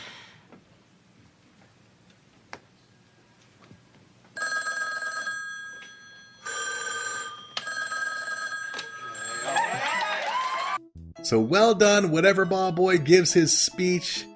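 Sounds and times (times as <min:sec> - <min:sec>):
telephones ringing with callers phoning in donations: 0:04.4 - 0:10.1
speech: 0:11.3 - 0:14.3.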